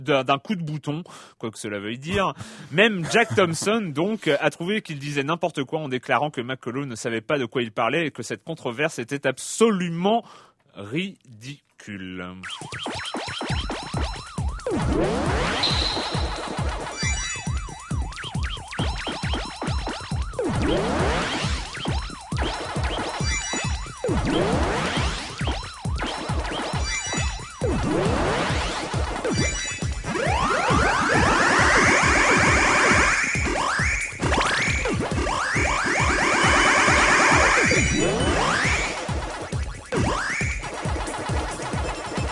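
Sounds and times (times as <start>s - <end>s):
speech: 0.0s - 13.5s, 14.7s - 16.4s, 20.7s - 21.3s
laughter: 2.8s - 3.8s
arcade video game chimes and bleeps of ghosts eaten in a chain combo: 12.4s - 42.2s
rising electronic sweeps: 12.4s - 42.2s
steady pulsing beat: 12.5s - 42.2s.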